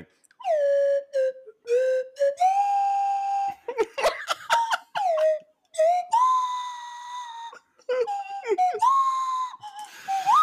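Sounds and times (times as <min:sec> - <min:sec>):
slide whistle playing a wobbly tune: 0:00.4 - 0:03.7, 0:04.5 - 0:10.4
laughter: 0:03.7 - 0:05.3.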